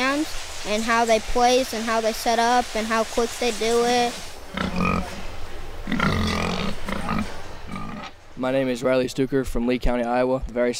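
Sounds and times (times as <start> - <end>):
speech: 0.2 - 4.8, 8.4 - 10.7
pig grunting and snorting while weighed on a scale at a livestock show: 4.5 - 5.2, 5.8 - 8.1.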